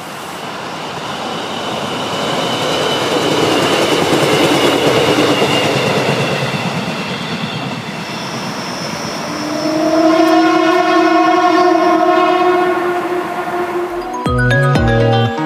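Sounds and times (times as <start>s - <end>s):
train rumbling past: 0.0s - 15.3s
locomotive whistle blast: 8.2s - 14.3s.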